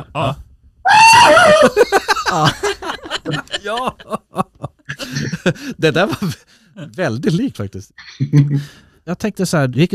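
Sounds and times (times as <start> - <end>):
speech: 0.0 - 0.4, 1.2 - 4.2, 5.1 - 9.9
person imitating a cartoon character's falling yell: 0.2 - 1.7
laughter: 1.4 - 6.4.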